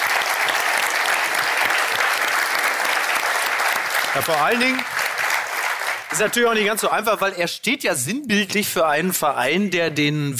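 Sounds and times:
audience applause: 0:00.0 - 0:07.0
speech: 0:04.2 - 0:05.0, 0:06.1 - 0:10.3.

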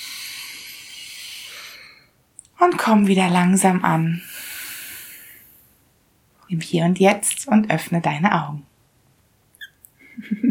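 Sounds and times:
person taking a slow deep breath during guided meditation: 0:00.0 - 0:02.2, 0:04.2 - 0:05.7
speech: 0:02.6 - 0:04.3, 0:06.5 - 0:08.7.

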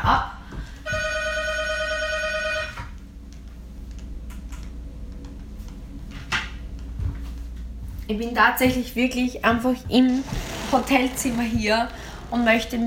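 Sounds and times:
telephone ringing in a steady electronic tone: 0:00.9 - 0:02.9
speech: 0:08.1 - 0:12.8.

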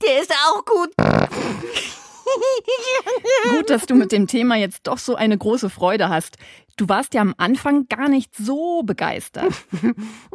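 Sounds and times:
speech: 0:00.2 - 0:01.8, 0:02.4 - 0:10.3
novelty fart generator toy fart sound effects: 0:01.0 - 0:01.6
laughter: 0:01.3 - 0:04.4, 0:09.4 - 0:10.1.

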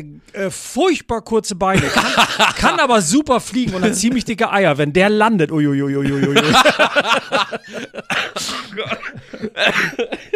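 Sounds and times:
speech: 0:00.0 - 0:10.3
laughter: 0:01.8 - 0:04.2, 0:06.0 - 0:10.3
raspy coughing: 0:03.6 - 0:04.2, 0:06.1 - 0:10.3.

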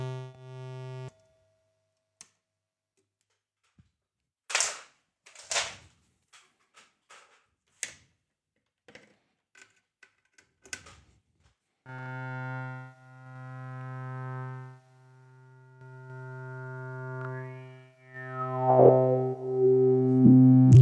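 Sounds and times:
filtered modular synthesizer buzzy drone: 0:00.0 - 0:01.1, 0:11.9 - 0:20.7
modular synthesizer sharp clicks and bleeps: 0:15.8 - 0:20.7.

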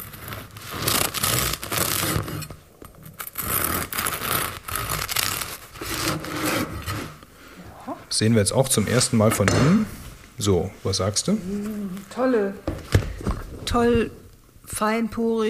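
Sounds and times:
knife sawing through a loaf of white bread fresh from the oven: 0:00.0 - 0:02.5, 0:03.2 - 0:07.2
speech: 0:08.2 - 0:12.9, 0:13.7 - 0:15.4.

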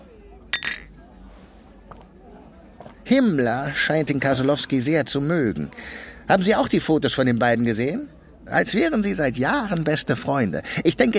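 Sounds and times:
glasses clinking in a toast: 0:00.5 - 0:01.1
speech: 0:03.1 - 0:11.1.

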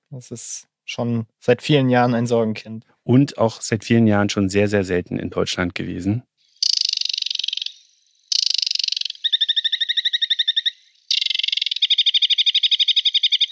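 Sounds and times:
speech: 0:00.1 - 0:06.3
aquatic warbler singing: 0:06.5 - 0:13.5.

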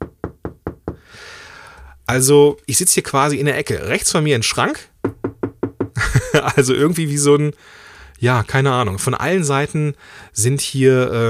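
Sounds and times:
knuckles knocking on a room wall: 0:00.0 - 0:01.0, 0:05.0 - 0:06.0
speech: 0:02.1 - 0:04.9, 0:06.3 - 0:11.2
laughter: 0:06.0 - 0:06.6.

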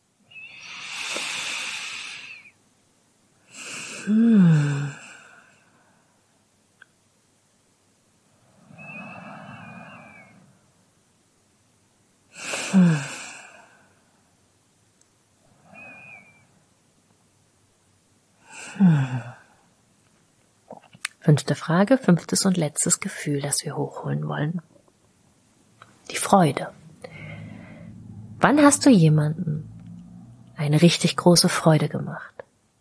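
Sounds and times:
person taking slow deep breaths with sighing release: 0:00.5 - 0:02.6, 0:03.5 - 0:06.1, 0:08.5 - 0:10.4, 0:12.4 - 0:14.1, 0:15.5 - 0:16.4, 0:18.4 - 0:19.6, 0:26.8 - 0:28.4
speech: 0:04.1 - 0:04.5, 0:21.3 - 0:24.7, 0:26.3 - 0:26.8, 0:28.4 - 0:29.7, 0:30.6 - 0:32.3.

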